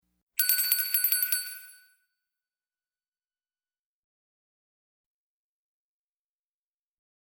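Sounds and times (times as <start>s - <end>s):
bell ringing: 0.4s - 1.9s.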